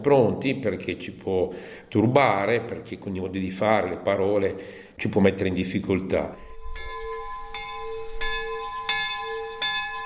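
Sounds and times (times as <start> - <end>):
speech: 0.0 - 6.9
monastery bell ringing: 6.4 - 10.0.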